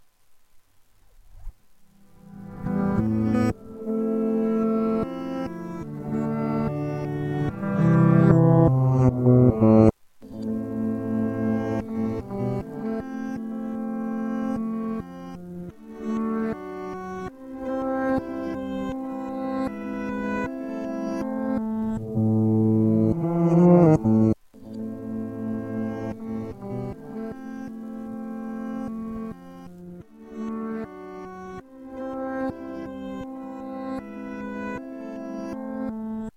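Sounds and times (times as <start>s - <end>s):
reversed guitar: 1.3s - 36.3s.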